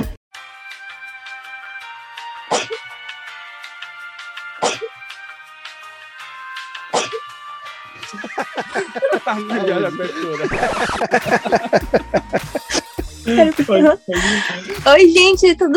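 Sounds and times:
sharp explosive sneezes: 2.5 - 2.8, 4.6 - 4.9, 6.9 - 7.2
speech: 2.5 - 3.0, 4.6 - 5.0, 8.1 - 15.7
laughter: 8.0 - 14.8.

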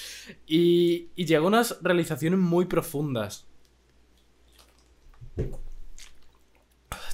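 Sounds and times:
speech: 0.3 - 3.5
person sipping water: 4.1 - 7.1.

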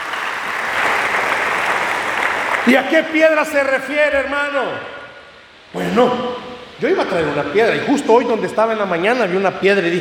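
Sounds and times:
congregation applauding: 0.0 - 3.3
speech: 2.6 - 5.0, 5.7 - 9.9.

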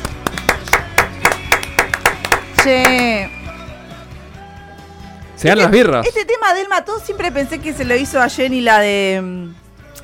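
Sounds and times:
small group clapping hands: 0.0 - 3.3
speech: 2.6 - 3.3, 5.4 - 9.6.

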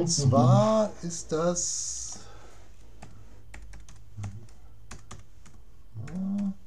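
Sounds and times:
speech: 0.0 - 2.0
typing on a computer keyboard while looking something up online: 3.0 - 6.6.

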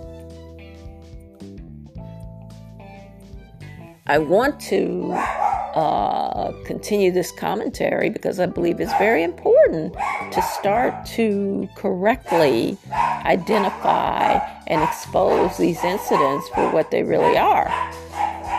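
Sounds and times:
speech: 4.1 - 18.0
dog barking with sharp yips and whiny barks: 5.0 - 5.9, 8.8 - 9.3, 9.9 - 11.1, 12.2 - 18.5.

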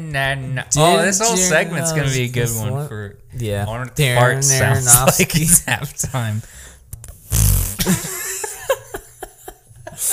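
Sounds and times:
speech: 0.0 - 6.7, 7.8 - 8.1
loud fart noise as a joke: 7.2 - 8.0
laughter: 7.8 - 10.1.

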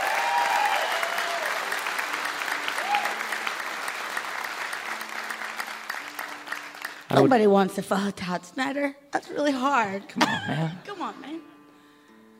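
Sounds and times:
faint cheers: 0.0 - 5.0
audience applause: 0.0 - 7.3
speech: 7.2 - 11.6.

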